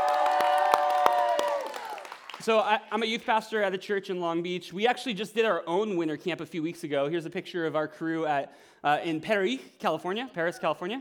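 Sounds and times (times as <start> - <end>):
crowd cheering and whooping for youth leaders: 0.0 - 2.3
speech: 2.4 - 10.9.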